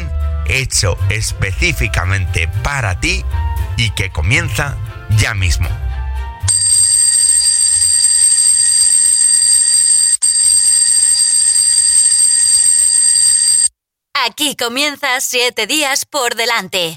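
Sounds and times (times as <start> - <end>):
speech: 0.5 - 5.9, 14.4 - 16.9
loud shrill alarm clock bell ringing: 6.5 - 13.7.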